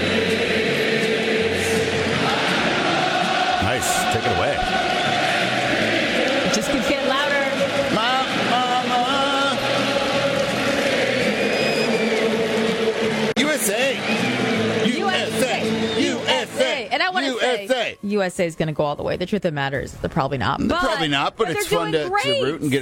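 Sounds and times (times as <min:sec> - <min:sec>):
huge stadium crowd singing together: 0:00.0 - 0:18.0
speech: 0:18.1 - 0:22.8.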